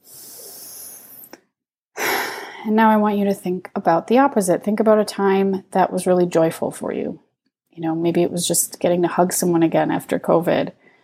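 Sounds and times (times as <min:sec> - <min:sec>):
deep breath: 0:00.0 - 0:01.4, 0:02.0 - 0:02.7, 0:10.8 - 0:11.0
speech: 0:02.6 - 0:07.2, 0:07.8 - 0:10.8.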